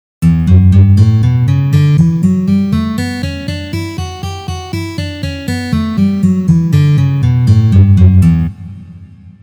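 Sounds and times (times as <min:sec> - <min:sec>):
B minor scale played: 0:00.2 - 0:08.5.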